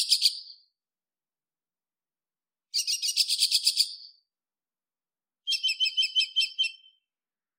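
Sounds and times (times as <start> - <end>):
nightingale singing in a desert: 0.0 - 0.7, 2.7 - 4.3, 5.5 - 7.1.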